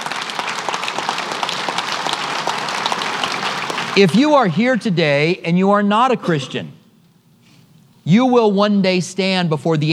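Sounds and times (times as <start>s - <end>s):
large congregation applauding: 0.0s - 4.2s
speech: 4.0s - 6.8s, 8.0s - 9.9s.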